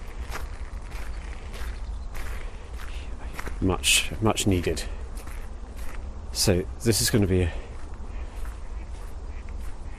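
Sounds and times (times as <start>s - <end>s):
steady low rumble of wind: 0.0s - 9.9s
speech: 3.6s - 5.0s, 6.4s - 7.6s
wild ducks quacking while circling overhead: 8.1s - 9.9s.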